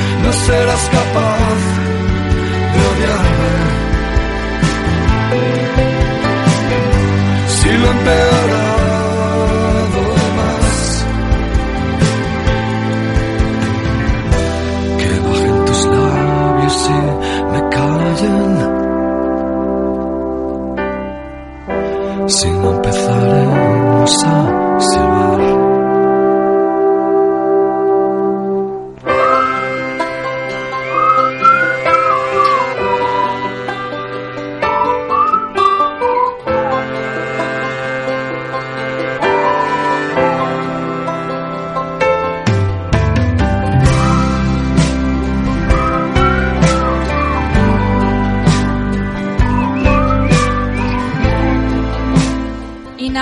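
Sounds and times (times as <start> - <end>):
full band playing a song with drums: 0.0 - 53.2
speech: 0.4 - 1.4
people whistling a song melody: 29.1 - 34.0, 34.6 - 37.1, 39.3 - 40.7, 43.7 - 52.4.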